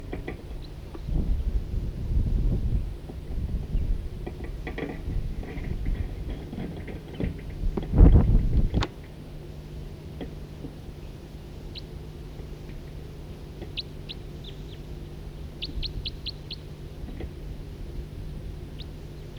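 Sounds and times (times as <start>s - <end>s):
steady low hum: 0.0s - 19.3s
two birds calling with two different call types: 10.9s - 19.3s.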